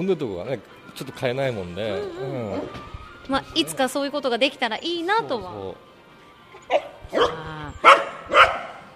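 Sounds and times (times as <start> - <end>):
speech: 0.0 - 5.9, 6.7 - 8.4
dog barking at a microphone cover: 6.7 - 8.9.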